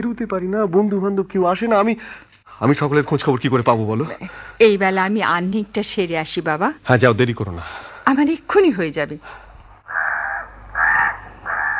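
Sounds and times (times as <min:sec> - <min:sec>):
speech: 0:00.0 - 0:09.4
faint low hum: 0:00.0 - 0:11.7
crow cawing: 0:09.8 - 0:11.7.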